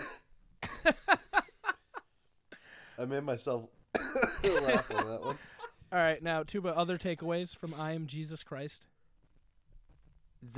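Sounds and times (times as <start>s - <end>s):
speech: 3.0s - 8.9s
phlegmy wet cough: 4.0s - 4.6s
laughter: 4.3s - 5.8s.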